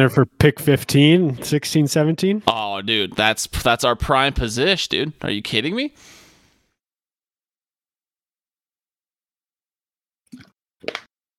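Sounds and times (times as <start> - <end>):
speech: 0.0 - 6.2
person gulping water: 10.3 - 11.1.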